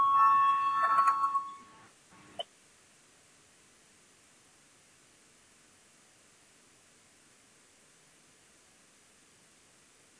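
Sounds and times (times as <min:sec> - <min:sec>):
electronic bell ringing to call a parliamentary vote: 0:00.0 - 0:01.9.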